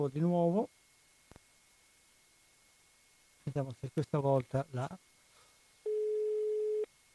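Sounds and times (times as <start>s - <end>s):
speech: 0.0s - 0.8s, 3.5s - 5.1s
faint hiss: 0.0s - 7.1s
telephone line tone during call connection: 5.9s - 6.9s.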